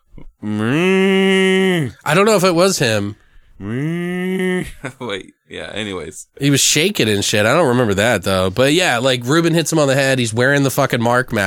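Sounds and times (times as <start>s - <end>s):
human voice imitating a cow mooing: 0.0s - 2.0s, 3.6s - 4.8s
speech: 0.4s - 0.8s, 2.1s - 11.4s.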